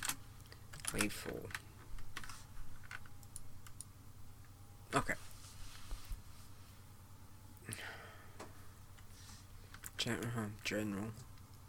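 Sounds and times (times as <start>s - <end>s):
typing on a computer keyboard: 0.0s - 3.9s
low steady hum: 0.0s - 11.6s
speech: 0.9s - 1.7s, 4.9s - 5.2s, 10.0s - 11.3s.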